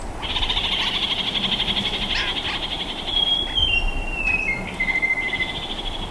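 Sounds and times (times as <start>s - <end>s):
yellow-fronted parakeet chattering: 0.2s - 6.0s
yellow-fronted parakeet whistled notes stepping lower: 2.1s - 5.5s.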